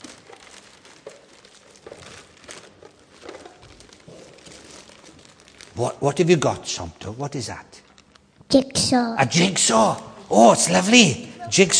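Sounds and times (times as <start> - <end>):
wrapping paper crinkling and tearing as a present is pulled open: 0.0 - 8.4
speech: 5.8 - 7.8, 8.5 - 11.7.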